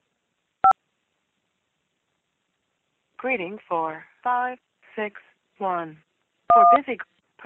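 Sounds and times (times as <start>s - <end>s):
speech: 3.2s - 7.4s
DTMF touch-tone keypad beeps entering a phone number: 6.5s - 6.8s.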